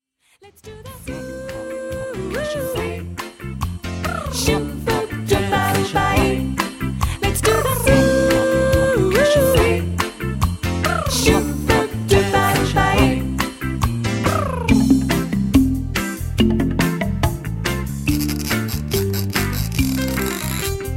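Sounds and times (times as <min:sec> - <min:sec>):
percussion pop music: 0:00.7 - 0:20.9.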